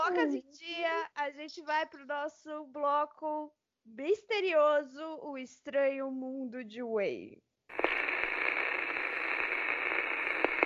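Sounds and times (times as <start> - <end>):
speech: 0.1 - 7.9
radio static hiss from an interrupted broadcast signal: 7.7 - 10.6.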